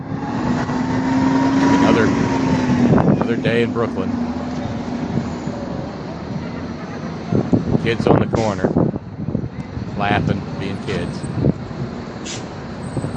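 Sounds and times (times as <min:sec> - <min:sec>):
city bus engine rumbling on a snowy street: 0:00.0 - 0:13.1
speech: 0:03.4 - 0:04.4, 0:07.9 - 0:08.9, 0:10.0 - 0:11.5
city bus air brakes hissing: 0:12.2 - 0:12.6.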